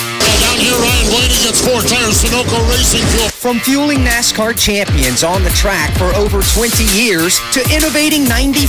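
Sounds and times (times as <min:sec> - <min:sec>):
race truck engines firing up and revving hard: 0:00.2 - 0:03.3
speech: 0:00.7 - 0:08.6.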